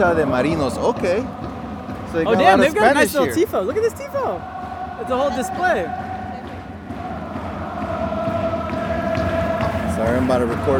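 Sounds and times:
speech: 0.0 - 1.5, 2.1 - 6.1, 10.0 - 10.7
large football stadium crowd roar: 0.0 - 10.7.

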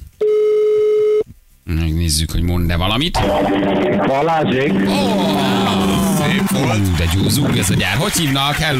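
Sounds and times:
telephone ringing tone on an outgoing call to a listener: 0.2 - 1.2
speech: 2.1 - 8.7
laughter: 3.2 - 8.7.

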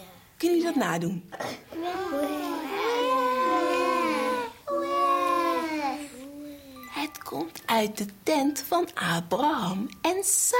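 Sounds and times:
speech: 0.4 - 2.3, 7.3 - 10.5
baby crying: 1.7 - 6.9.

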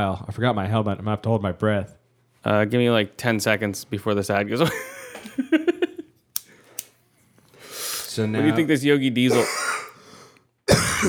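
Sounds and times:
speech: 0.0 - 5.7, 8.2 - 9.6
laughter: 4.6 - 6.1
cough into the microphone: 9.3 - 10.0, 10.7 - 11.0.

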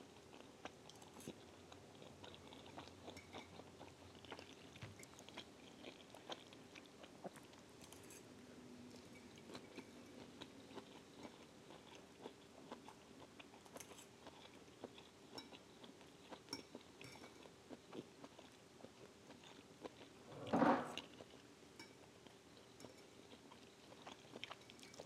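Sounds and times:
soft irregular chewing: 0.1 - 8.2, 8.9 - 20.2, 21.0 - 25.0.

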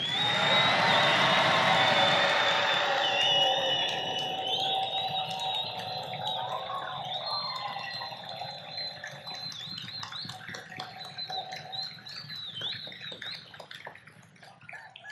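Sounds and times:
crowd yelling together on a count of three: 0.0 - 8.0.

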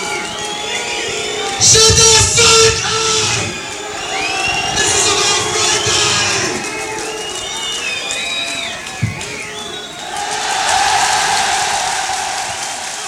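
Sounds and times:
audience members shouting and yelling: 0.0 - 13.0
speech: 1.6 - 3.1
live audience cheering on a recorded performance: 3.5 - 8.2, 9.2 - 13.0
audience whistles: 3.6 - 13.0.

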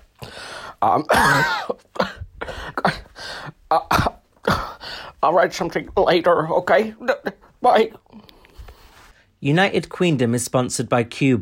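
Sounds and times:
speech: 0.8 - 3.0, 3.7 - 4.1, 5.2 - 8.0, 9.4 - 11.4
person sick with a cough and fever coughing: 0.9 - 5.1
person sick with a cough and fever clearing throat: 1.0 - 4.8.

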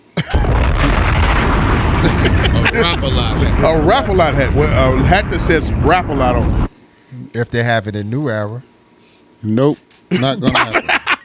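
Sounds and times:
explosion sound effect boom and roaring rumble: 0.2 - 6.7
laughter: 2.0 - 3.6, 10.1 - 11.2
speech: 3.0 - 6.7, 7.4 - 8.7, 9.4 - 10.8.

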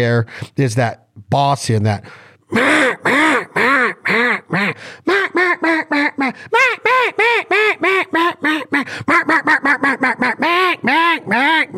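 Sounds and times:
speech: 0.0 - 11.7
hen mallard quacks blown on a duck call: 2.6 - 11.7.

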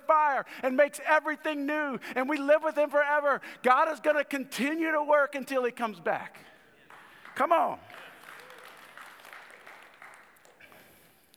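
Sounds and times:
speech: 0.4 - 6.5, 7.4 - 8.1
crowd clapping: 6.8 - 11.3.

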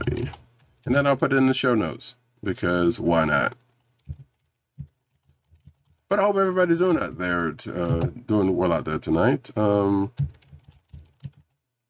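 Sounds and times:
typing on a computer keyboard: 0.0 - 1.0, 3.8 - 6.1, 10.1 - 11.6
faint hum: 0.0 - 11.8
speech: 0.8 - 3.6, 6.1 - 10.4.

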